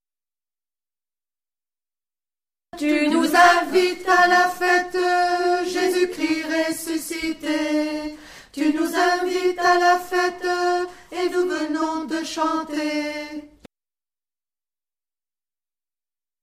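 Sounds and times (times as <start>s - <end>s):
alto voice singing: 2.8s - 13.7s.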